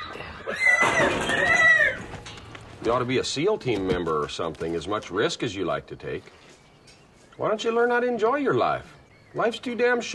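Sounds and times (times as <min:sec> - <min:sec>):
horse neighing: 0:00.4 - 0:02.1
speech: 0:02.8 - 0:06.5, 0:07.4 - 0:10.1.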